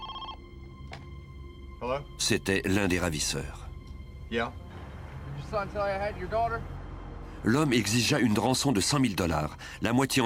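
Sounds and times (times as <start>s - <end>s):
telephone ringing: 0.0s - 0.5s
speech: 1.8s - 3.7s, 4.3s - 4.6s, 5.5s - 6.8s, 7.4s - 10.2s.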